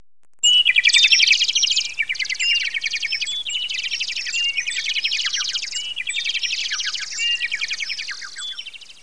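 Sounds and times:
high-pitched bird chirps and twitters: 0.4s - 9.0s.

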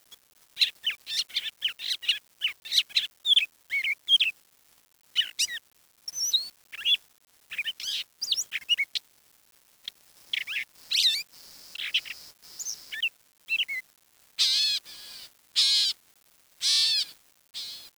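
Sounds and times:
bird song of varied whistled and warbled phrases: 0.6s - 4.3s, 5.2s - 9.0s, 10.3s - 13.8s, 14.4s - 16.0s, 16.6s - 17.9s.

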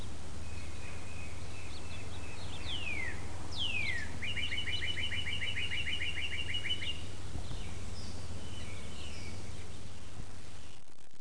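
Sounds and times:
constant low rumble: 0.0s - 11.1s
bird trills, downward-sweeping whistles and high chirps: 0.5s - 7.0s.

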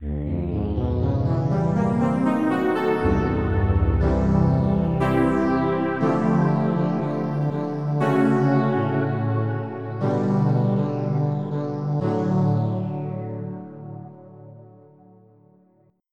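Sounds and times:
halo synth pad: 0.3s - 12.7s.

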